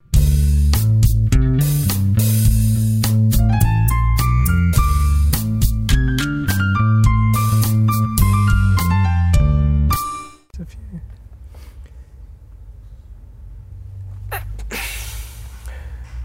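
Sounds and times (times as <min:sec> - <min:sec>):
noise: 0:00.0 - 0:16.2
sneeze: 0:14.3 - 0:15.4.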